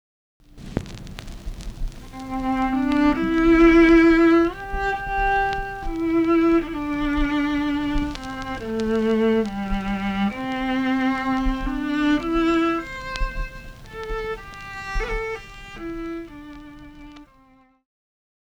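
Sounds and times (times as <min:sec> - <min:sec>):
viola: 0:00.5 - 0:17.6.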